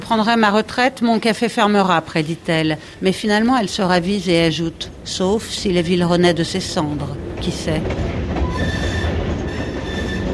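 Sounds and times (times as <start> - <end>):
train passing on railway track behind a café in a town centre: 0.0 - 10.3
speech: 0.1 - 8.2
thin metallic train wheel squeals: 8.4 - 10.3.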